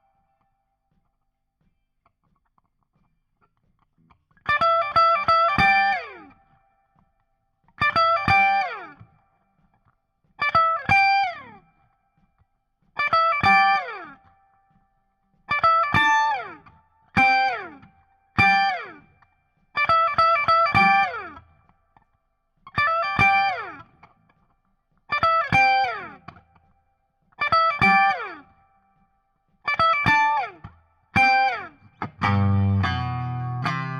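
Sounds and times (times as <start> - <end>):
guitar solo: 4.4 - 6.5, 7.8 - 9.1, 10.4 - 11.6, 13.0 - 14.4, 15.5 - 19.2, 19.8 - 21.5, 22.8 - 24.1, 25.1 - 26.5, 27.4 - 28.6, 29.7 - 33.9.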